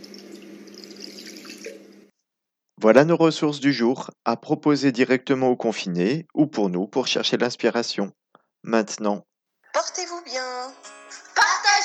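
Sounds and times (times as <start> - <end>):
tap water poured into a salad bowl lined with paper towel: 0.0 - 2.1
speech: 2.8 - 10.8.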